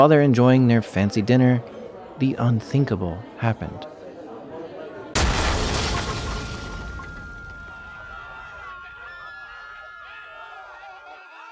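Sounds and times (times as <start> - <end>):
speech: 0.0 - 3.9
low murmur: 0.2 - 11.4
loud explosion: 5.2 - 8.5.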